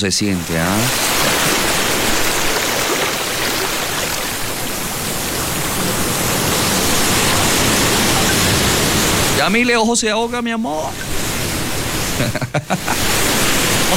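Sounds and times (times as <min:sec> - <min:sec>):
speech: 0:00.0 - 0:01.7, 0:09.5 - 0:11.2, 0:12.2 - 0:13.1
sea water churning and splashing around a swimmer at San Andrés Islas: 0:00.0 - 0:13.9
sea waves coming in at San Andrés Islas: 0:00.0 - 0:13.9
laughter: 0:05.7 - 0:13.9.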